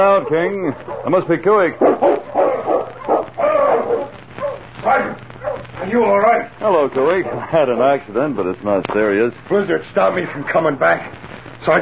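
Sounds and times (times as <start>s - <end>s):
sled dog team barking and yelping: 0.0s - 1.2s, 1.8s - 5.8s
speech: 0.0s - 2.3s, 5.9s - 11.8s.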